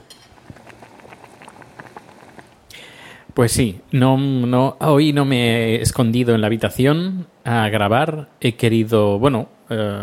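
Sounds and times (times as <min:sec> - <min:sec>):
water boiling spaghetti in a pot: 0:00.0 - 0:02.7
hissing: 0:00.4 - 0:03.1
speech: 0:03.4 - 0:10.0.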